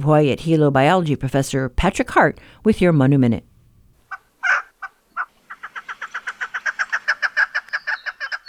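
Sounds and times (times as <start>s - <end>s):
speech: 0.0s - 3.5s
chukar partridge calls: 4.0s - 8.4s.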